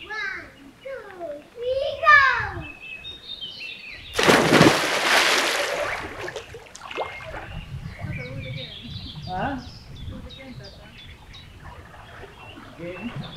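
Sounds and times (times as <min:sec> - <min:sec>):
birds chirping outdoors: 0:00.0 - 0:13.3
person splashing into cold water for a swim: 0:04.2 - 0:07.6
water churning and sloshing: 0:04.2 - 0:09.4, 0:10.3 - 0:13.3.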